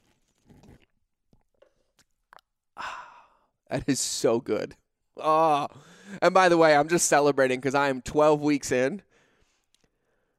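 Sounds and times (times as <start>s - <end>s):
person sipping Americano coffee with collagen: 0.0s - 2.8s
speech: 3.7s - 9.1s.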